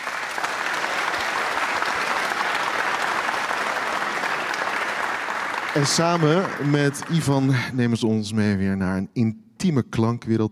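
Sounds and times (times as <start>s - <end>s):
large audience applause: 0.0s - 8.0s
speech: 5.8s - 10.4s.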